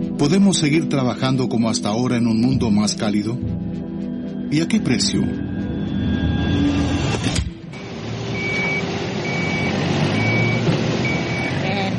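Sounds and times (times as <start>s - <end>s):
speech: 0.2s - 3.7s, 4.5s - 6.2s
old heavy work vehicle engine rumbling: 6.1s - 11.9s
old heavy work vehicle reverse alarm beeps: 7.8s - 11.7s.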